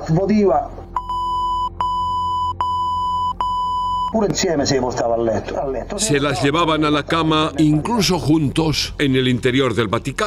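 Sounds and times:
speech: 0.1s - 0.8s, 4.1s - 10.2s
high-pitched censor bleep on Italian television: 1.0s - 4.2s.

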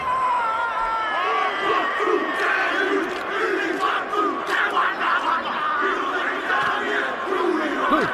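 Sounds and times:
large crowd roaring: 0.0s - 8.1s
rugby team chanting and shouting a Maori haka war chant: 0.0s - 8.1s.

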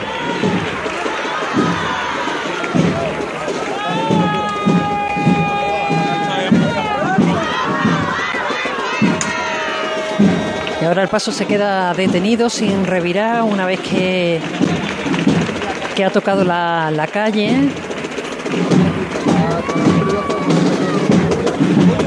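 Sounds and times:
crowd applauding at a night-time street procession in Seville: 0.0s - 22.0s
voices calling out: 0.0s - 22.0s
speech: 10.9s - 15.0s, 16.0s - 17.9s, 18.5s - 20.3s.

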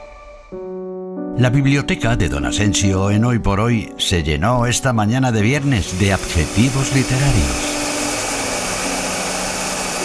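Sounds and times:
speech: 0.5s - 0.8s, 1.4s - 7.8s
vacuum cleaner cleaning popcorn from an office: 5.6s - 10.0s.

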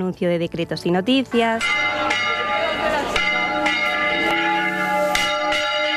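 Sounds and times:
speech: 0.0s - 2.0s
church bells ringing a peal: 1.3s - 5.9s.

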